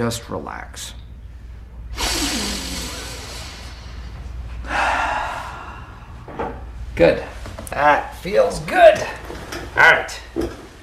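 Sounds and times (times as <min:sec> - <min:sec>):
speech: 0:00.0 - 0:01.0, 0:07.0 - 0:10.6
big deep breaths: 0:01.2 - 0:06.8.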